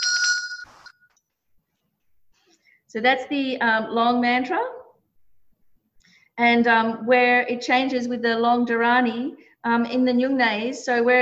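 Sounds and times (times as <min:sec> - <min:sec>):
bell ringing during mantra recitation: 0:00.0 - 0:01.1
speech: 0:02.9 - 0:04.8, 0:06.4 - 0:11.2.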